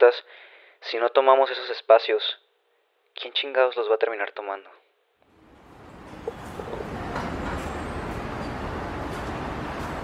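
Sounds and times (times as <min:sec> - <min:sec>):
speech: 0:00.0 - 0:02.4, 0:03.2 - 0:04.8
engine rumble and road noise inside a moving rapid-transit city bus: 0:05.4 - 0:10.0.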